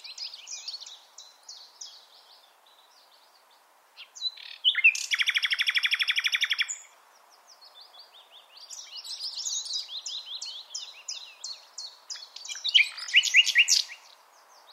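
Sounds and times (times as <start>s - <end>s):
common nightingale Luscinia megarhynchos singing varied phrases: 0.0s - 14.7s.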